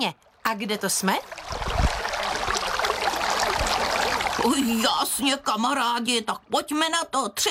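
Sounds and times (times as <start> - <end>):
speech: 0.0 - 1.8, 3.8 - 7.4
water splashing and lapping at the shore of a lake: 0.0 - 5.6.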